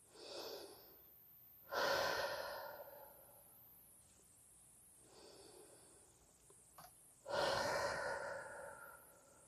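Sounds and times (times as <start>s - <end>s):
deep breathing, inhaling through nose and exhaling through mouth: 0.0s - 3.6s, 5.0s - 6.4s, 7.2s - 9.4s.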